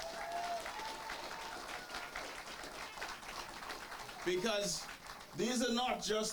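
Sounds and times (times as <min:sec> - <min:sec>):
faint cheering: 0:00.0 - 0:02.4
large audience clapping for a prime minister: 0:00.0 - 0:06.3
speech: 0:04.2 - 0:06.3.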